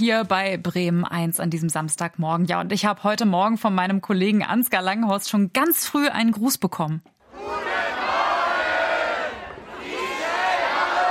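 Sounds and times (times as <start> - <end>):
speech: 0.0 - 7.6
large festival audience cheering and shouting a greeting in unison: 7.3 - 11.1.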